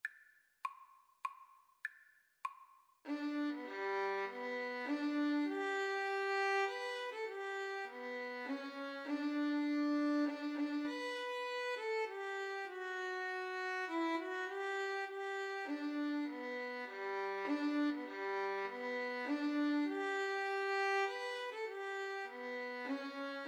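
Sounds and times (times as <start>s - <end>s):
violin and cello duet playing an anthem: 3.1s - 23.4s.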